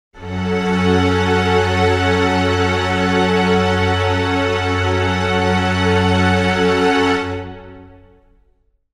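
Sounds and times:
string chord pad in F sharp minor: 0.2s - 8.4s.

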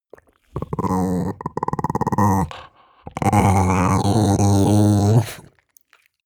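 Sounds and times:
chihuahua growl stutter: 0.5s - 5.5s.

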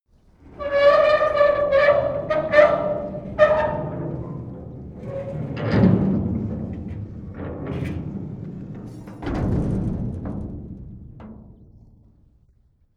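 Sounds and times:
metal gate closing: 0.4s - 9.6s.

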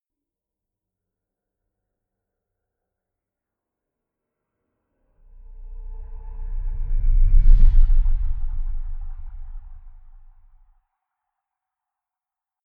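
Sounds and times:
small spaceship flyby: 5.3s - 10.6s
sonic boom: 5.4s - 10.6s.

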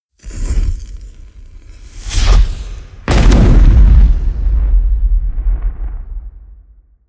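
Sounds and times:
large fireball spell cast explosion: 2.2s - 7.0s.

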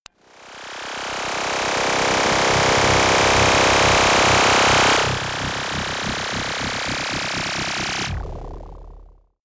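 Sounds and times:
long science fiction splutter noise: 1.3s - 8.8s.

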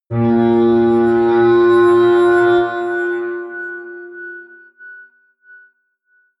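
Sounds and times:
low atmospheric feedback synthesizer drones: 0.1s - 4.9s.

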